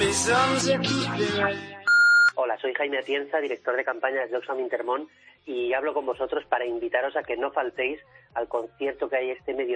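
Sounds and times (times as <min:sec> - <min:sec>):
speech: 0:00.2 - 0:01.8, 0:02.5 - 0:09.7
answering machine electronic beeps: 0:01.9 - 0:02.4.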